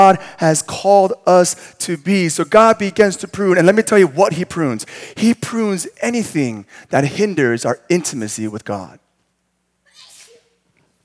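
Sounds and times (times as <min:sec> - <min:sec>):
speech: 0:00.0 - 0:09.0
quiet room hum: 0:00.0 - 0:11.0
single sharp sneeze: 0:09.9 - 0:10.6.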